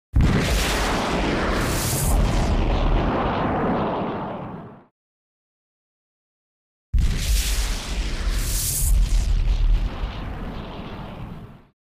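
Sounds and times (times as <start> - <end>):
energy blast explosions: 0.2 - 4.9, 7.0 - 11.7.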